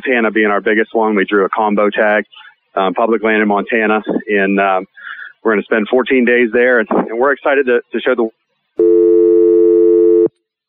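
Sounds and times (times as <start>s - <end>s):
speech: 0.0s - 9.3s
steady electronic telephone ring: 8.8s - 10.3s.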